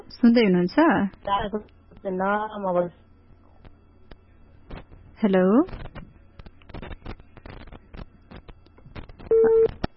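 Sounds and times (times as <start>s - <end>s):
speech: 0.1s - 3.0s, 5.2s - 5.9s
crackling clicks and telephone line noise: 3.6s - 9.9s
telephone line tone after a call was cut off: 9.3s - 9.8s.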